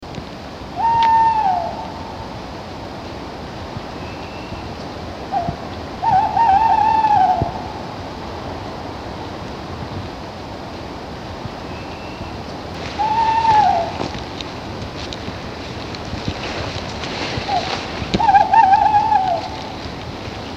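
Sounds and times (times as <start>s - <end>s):
steady low rush: 0.0s - 20.4s
tawny owl wavering hoots: 0.8s - 2.3s, 5.3s - 7.9s, 11.7s - 14.2s, 17.5s - 19.8s.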